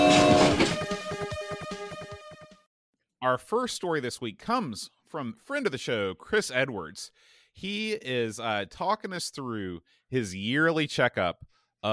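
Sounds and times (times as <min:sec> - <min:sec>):
train horn: 0:00.0 - 0:00.9
speech: 0:03.2 - 0:11.9.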